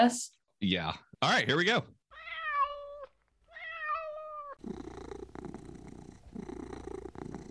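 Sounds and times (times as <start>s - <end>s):
speech: 0.0s - 2.0s
domestic cat meowing: 2.1s - 4.7s
domestic cat purring: 2.2s - 7.4s.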